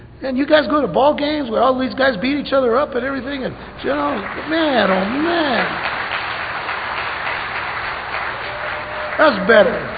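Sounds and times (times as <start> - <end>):
speech: 0.2 - 6.0, 9.2 - 9.9
audience clapping and applause: 3.8 - 9.9.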